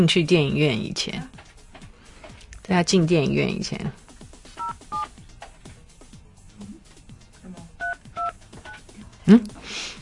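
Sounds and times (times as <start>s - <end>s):
speech: 0.0s - 1.4s, 2.7s - 4.0s, 9.3s - 9.9s
telephone keypad tones as a phone number is entered: 4.6s - 5.1s.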